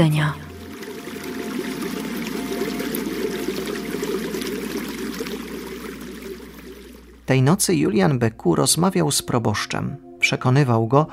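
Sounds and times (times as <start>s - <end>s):
speech: 0.0s - 0.5s, 7.3s - 11.1s
small stream trickling and babbling: 0.0s - 7.3s.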